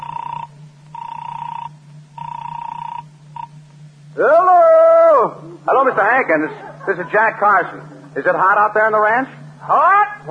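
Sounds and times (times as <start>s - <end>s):
telephone ringing in buzzy bursts: 0.0s - 3.6s
low hum: 0.0s - 10.2s
speech: 4.2s - 4.4s, 5.2s - 10.2s
laughter: 5.4s - 8.3s.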